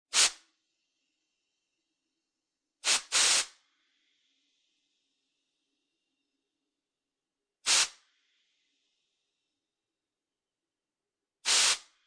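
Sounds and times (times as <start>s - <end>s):
air can short sprays: 0.1s - 0.4s, 2.8s - 3.6s, 7.6s - 8.0s, 11.4s - 11.9s.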